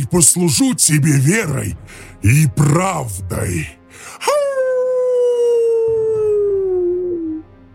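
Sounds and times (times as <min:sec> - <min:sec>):
speech: 0:00.0 - 0:04.4
wolf howling: 0:04.3 - 0:07.5.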